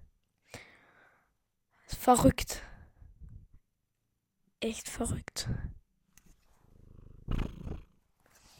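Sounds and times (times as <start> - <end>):
speech: 2.1 - 2.7, 4.6 - 5.8
cat purring: 6.6 - 8.1.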